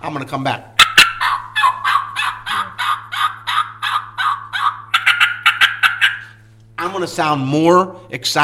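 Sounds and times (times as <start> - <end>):
speech: 0.0 - 0.8, 6.8 - 8.4
wild turkey gobbling and yelping: 0.8 - 6.5.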